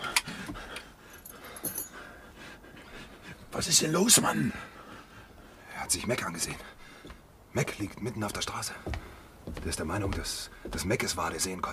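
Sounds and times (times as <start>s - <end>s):
handcuff keys jingling as they are handed over: 1.1s - 2.1s
speech: 3.6s - 4.7s, 5.9s - 6.8s, 7.6s - 9.0s, 9.6s - 11.7s.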